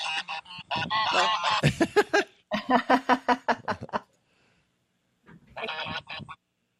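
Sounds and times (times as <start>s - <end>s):
flock of rescued domestic geese honking beside a barn: 0.0s - 1.6s, 5.6s - 6.4s
laughter: 1.6s - 4.0s.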